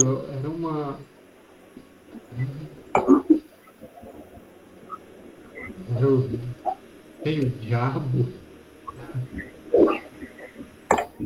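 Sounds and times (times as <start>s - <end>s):
speech: 0.0s - 1.2s, 2.1s - 3.2s, 5.9s - 8.4s
person choking and coughing in rough bursts: 3.0s - 3.4s.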